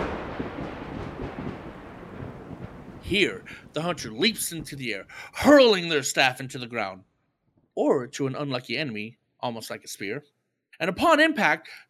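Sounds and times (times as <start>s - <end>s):
heavy thunder rumbling: 0.0s - 6.1s
speech: 3.1s - 7.1s, 7.8s - 11.8s.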